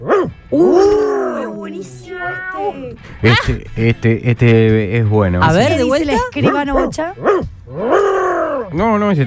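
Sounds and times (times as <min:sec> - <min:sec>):
speech: 0:00.0 - 0:00.9, 0:03.0 - 0:09.2
dogs barking and snarling in a dog fight: 0:00.0 - 0:03.3, 0:06.3 - 0:08.8.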